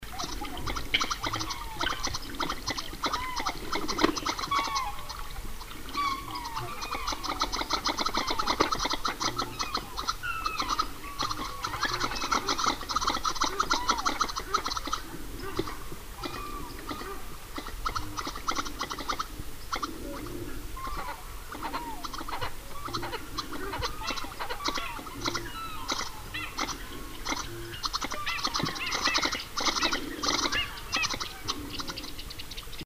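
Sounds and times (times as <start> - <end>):
Australasian Shoveler calling: 0.1 - 32.2.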